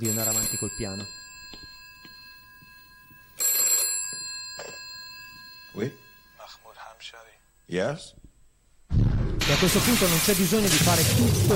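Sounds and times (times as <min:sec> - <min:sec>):
speech: 0:00.0 - 0:01.6, 0:05.8 - 0:06.0, 0:07.7 - 0:08.2, 0:09.5 - 0:11.5
telephone bell ringing: 0:00.0 - 0:07.0.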